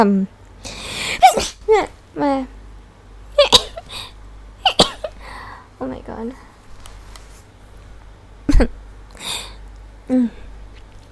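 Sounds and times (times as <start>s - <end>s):
speech: 0.0s - 2.6s, 5.8s - 6.5s, 8.6s - 8.8s, 10.1s - 10.4s
person sneezing: 1.0s - 1.8s.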